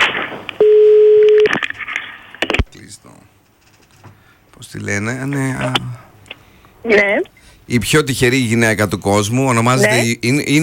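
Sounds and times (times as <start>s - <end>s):
telephone tone as a call is placed: 0.6s - 1.6s
speech: 4.8s - 6.0s, 6.8s - 10.6s.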